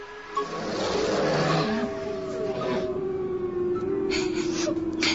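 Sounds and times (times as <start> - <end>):
wolves making tonal calls while attacking a large animal: 0.3 - 5.1
wolves attacking a large animal in a harsh roaring commotion: 0.4 - 5.1.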